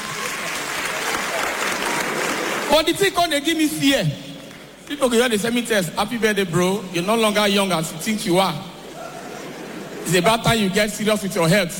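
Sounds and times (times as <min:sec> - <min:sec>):
applause: 0:00.0 - 0:02.7
speech: 0:02.7 - 0:04.3, 0:04.9 - 0:08.7, 0:10.1 - 0:11.7
laughter: 0:08.8 - 0:10.6.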